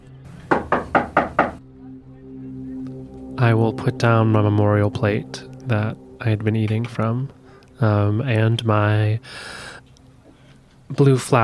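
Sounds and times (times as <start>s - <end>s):
low steady hum: 0.0s - 11.4s
knocking on a door: 0.5s - 1.6s
speech: 3.4s - 9.6s, 10.9s - 11.4s.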